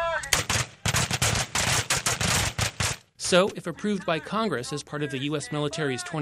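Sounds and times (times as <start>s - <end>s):
rifle gunfire from Marines practising at a military base rifle range: 0.2s - 3.0s
speech: 3.3s - 6.1s.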